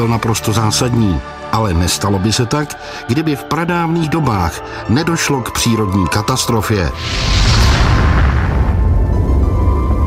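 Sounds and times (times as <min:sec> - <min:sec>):
speech: 0:00.0 - 0:08.3
massive sustained explosion roaring: 0:07.0 - 0:09.6.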